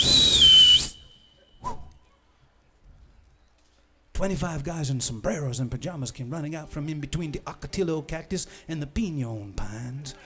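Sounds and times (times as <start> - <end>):
man whistling aboard an old B-25 bomber in a bean field: 0.0 - 2.0
speech: 4.2 - 10.2.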